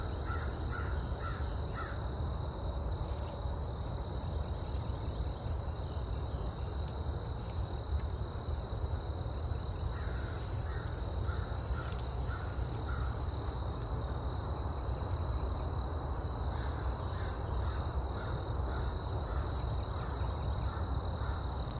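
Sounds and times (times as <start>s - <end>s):
crickets giving a steady high insect trill: 0.0s - 21.7s
crow cawing short hoarse caws: 0.2s - 2.0s, 10.0s - 13.2s, 16.6s - 21.4s.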